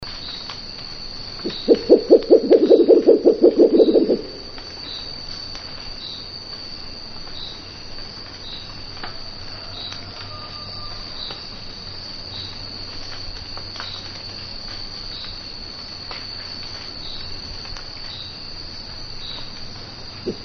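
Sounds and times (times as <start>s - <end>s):
murucututu owl calling: 1.4s - 4.4s, 20.3s - 20.4s.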